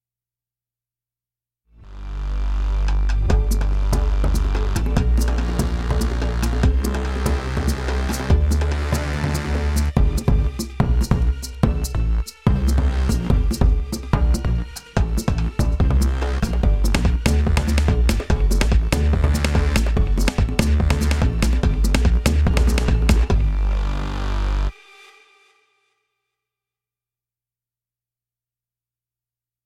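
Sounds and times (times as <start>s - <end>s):
percussive bass: 1.9s - 24.7s.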